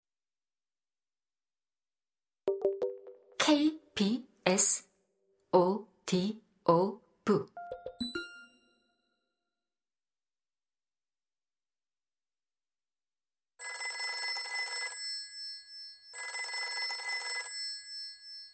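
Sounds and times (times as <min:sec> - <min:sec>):
speech: 0:03.5 - 0:04.9, 0:05.5 - 0:08.2
telephone bell ringing in buzzing bursts: 0:13.6 - 0:18.5.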